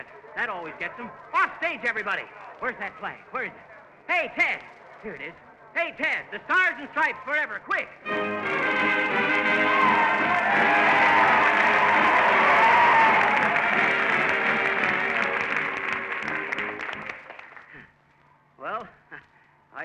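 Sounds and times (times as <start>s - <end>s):
speech: 0.4s - 10.8s
large audience cheering and applauding: 8.4s - 17.7s.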